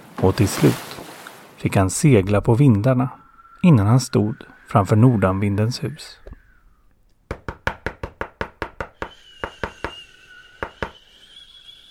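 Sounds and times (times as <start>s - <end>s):
speech: 0.2s - 1.0s, 1.6s - 6.2s
sharp knocks on a door: 7.3s - 9.0s.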